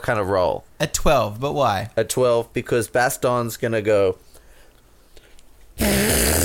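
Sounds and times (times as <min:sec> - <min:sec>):
speech: 0:00.1 - 0:04.2
imitated fart made by squeezing air from the armpit or elbow pit: 0:05.8 - 0:06.4.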